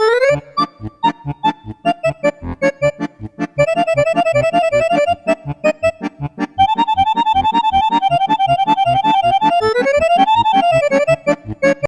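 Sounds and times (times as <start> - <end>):
accordion playing Hungarian csardas folk dance: 0.0 - 11.8.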